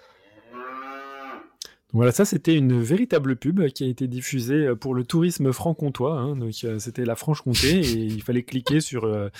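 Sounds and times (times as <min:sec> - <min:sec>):
cow mooing: 0:00.2 - 0:01.6
speech: 0:01.9 - 0:09.3
laughter: 0:07.5 - 0:09.0.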